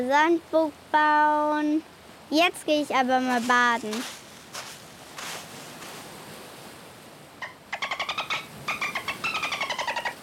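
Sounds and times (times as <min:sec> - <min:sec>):
speech: 0:00.0 - 0:04.2
seagull squawking: 0:07.4 - 0:10.2.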